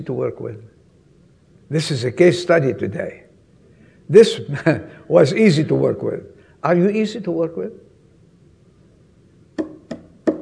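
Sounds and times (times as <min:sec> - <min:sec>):
speech: 0:00.0 - 0:00.8, 0:01.7 - 0:03.2, 0:04.1 - 0:07.9
hand knocking on a hollow surface: 0:09.6 - 0:10.4.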